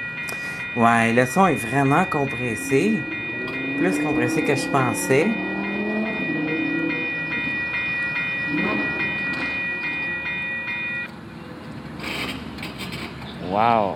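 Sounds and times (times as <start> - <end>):
thin sustained high tone: 0.0 - 11.1
train locomotive with a single wagon rolling by: 0.0 - 12.6
speech: 0.3 - 3.2, 3.8 - 5.5, 13.6 - 13.9.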